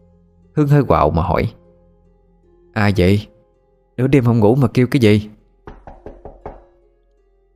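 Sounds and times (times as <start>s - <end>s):
speech: 0.6s - 1.6s, 2.8s - 3.3s, 4.0s - 5.4s
knocking on a door: 5.7s - 6.8s.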